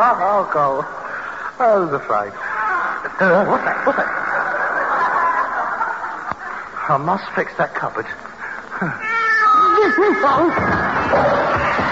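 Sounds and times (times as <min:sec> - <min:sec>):
speech: 0:00.0 - 0:01.0, 0:01.6 - 0:02.4, 0:03.0 - 0:04.2, 0:06.9 - 0:09.1, 0:09.8 - 0:11.8
laughter: 0:02.7 - 0:06.9, 0:09.6 - 0:11.8
cat yowling: 0:09.0 - 0:11.8.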